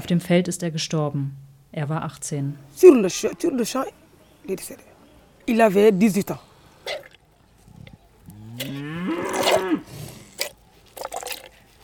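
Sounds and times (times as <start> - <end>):
speech: 0.1 - 4.9, 5.5 - 6.5
quiet barn ambience: 2.5 - 11.8
cow mooing during milking: 8.3 - 9.9.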